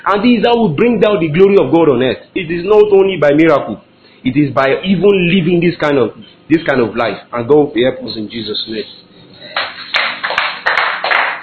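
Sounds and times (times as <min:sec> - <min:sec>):
speech: 0:00.0 - 0:09.6
hands clapping in applause at a church gathering: 0:09.5 - 0:11.4.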